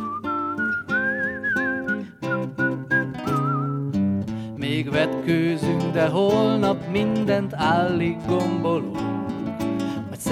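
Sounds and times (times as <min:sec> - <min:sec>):
whistled melody: 0:00.0 - 0:04.1
instrumental backing music: 0:00.0 - 0:10.3
speech: 0:04.8 - 0:09.1.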